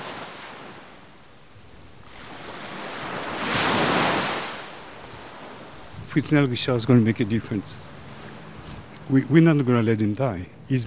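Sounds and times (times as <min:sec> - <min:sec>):
faint wind: 0:00.0 - 0:10.8
ocean waves breaking on shore: 0:00.0 - 0:10.8
speech: 0:06.1 - 0:08.0, 0:09.1 - 0:10.8.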